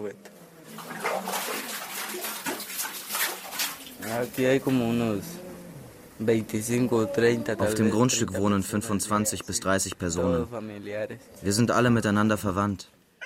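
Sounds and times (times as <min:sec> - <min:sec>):
speech: 0:00.0 - 0:00.9, 0:04.1 - 0:05.4, 0:06.2 - 0:13.0
water sloshing and splashing in a bucket: 0:00.6 - 0:04.8
light bucket hauled up from a well: 0:00.7 - 0:04.4.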